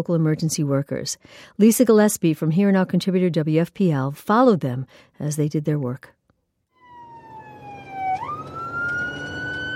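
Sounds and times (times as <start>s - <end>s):
speech: 0.0s - 6.2s
EMS ambulance siren wailing responding to a call: 6.8s - 9.7s
road rumble from an ambulance: 7.2s - 9.7s.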